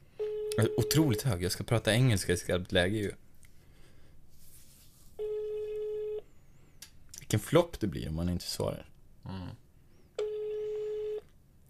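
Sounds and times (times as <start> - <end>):
faint hiss: 0.0 - 11.6
ringback tone from an outgoing phone call to a Norwegian number: 0.2 - 1.2, 5.2 - 6.2, 10.2 - 11.2
speech: 0.6 - 3.2, 7.3 - 9.6.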